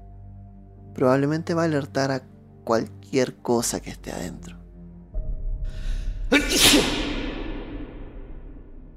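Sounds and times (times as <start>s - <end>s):
speech: 1.0s - 4.6s, 6.3s - 7.0s
person sneezing in an enclosed space: 6.3s - 7.5s.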